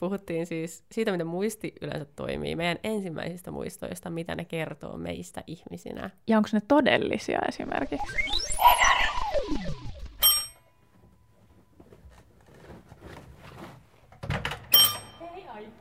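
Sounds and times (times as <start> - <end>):
speech: 0.0 - 8.8
doorbell ding: 10.2 - 10.6, 14.7 - 15.3
neighbour's doorbell buzzer ringing: 14.7 - 15.2.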